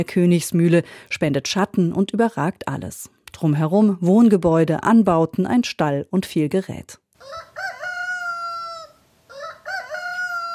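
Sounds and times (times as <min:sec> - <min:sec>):
speech: 0:00.0 - 0:07.7
rooster crowing: 0:07.2 - 0:10.5.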